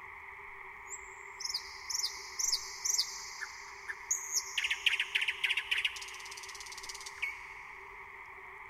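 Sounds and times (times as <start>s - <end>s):
faint steady hum: 0.0s - 8.6s
thrush nightingale song with whistled notes and chattering: 0.9s - 7.5s.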